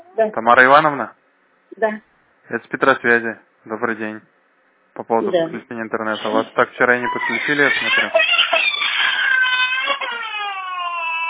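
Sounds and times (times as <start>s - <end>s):
speech: 0.2s - 4.3s, 5.0s - 8.6s
young child crying after bumping itself: 7.0s - 11.2s.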